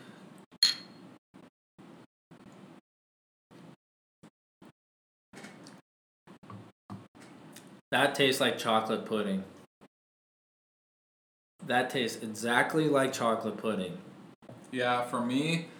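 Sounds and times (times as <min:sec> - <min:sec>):
drinking glasses clinking in a toast: 0:00.6 - 0:01.0
speech: 0:07.9 - 0:09.6, 0:11.7 - 0:14.1, 0:14.7 - 0:15.7.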